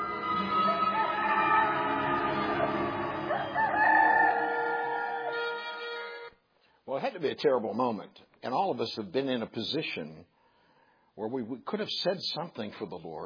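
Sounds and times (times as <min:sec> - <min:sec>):
rooster crowing loudly: 0:00.2 - 0:06.2
speech: 0:07.1 - 0:10.3, 0:11.2 - 0:13.2.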